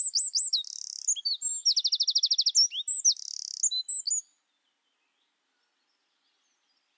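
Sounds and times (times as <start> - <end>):
Eurasian wren Troglodytes troglodytes song: 0.0 - 4.3.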